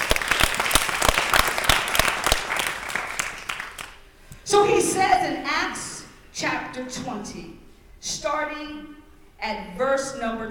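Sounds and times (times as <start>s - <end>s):
congregation applause during a church worship service: 0.0s - 4.0s
speech: 4.5s - 10.4s.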